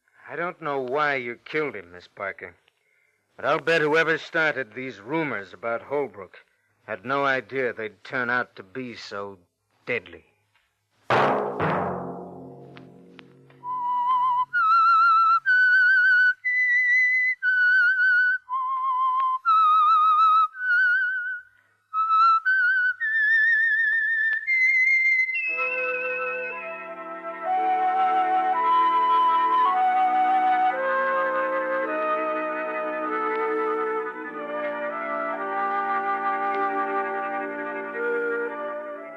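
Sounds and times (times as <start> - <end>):
speech: 0.3 - 2.6, 3.4 - 10.3
solo whistled melody of a radio program theme: 13.5 - 39.1.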